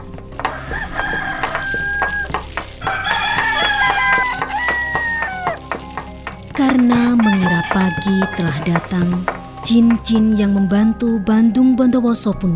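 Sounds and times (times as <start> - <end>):
rooster crowing: 0.5 - 5.6, 7.2 - 9.0
speech: 7.7 - 12.5.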